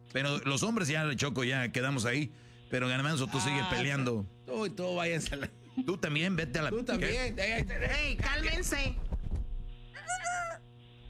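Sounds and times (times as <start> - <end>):
low steady hum: 0.0 - 11.0
speech: 0.1 - 9.1
person imitating rooster crow: 10.0 - 10.6.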